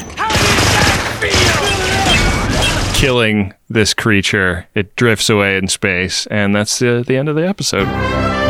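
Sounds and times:
machine gun fire punching holes in a small spacecraft roof: 0.3s - 3.0s
speech: 3.0s - 8.4s.

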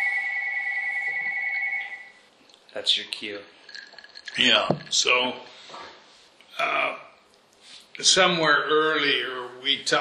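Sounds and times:
telephone ringing with an electronic trill: 0.0s - 2.2s
speech: 2.8s - 6.0s, 6.6s - 7.1s, 8.0s - 9.9s.

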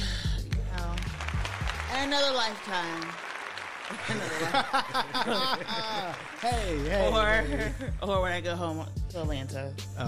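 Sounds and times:
sharp soft hand claps: 0.4s - 7.2s
speech: 2.0s - 3.2s, 3.9s - 10.0s
laughter: 3.8s - 8.1s.

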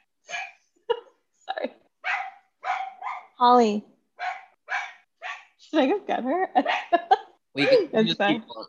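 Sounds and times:
dog barking at a delivery person: 0.3s - 0.6s, 2.0s - 3.4s, 4.2s - 5.6s, 6.6s - 7.1s
speech: 3.4s - 3.9s, 5.7s - 8.6s.

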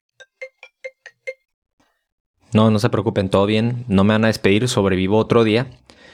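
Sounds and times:
phone ringtone for an incoming call chiming: 0.2s - 1.4s
speech: 2.5s - 6.0s.

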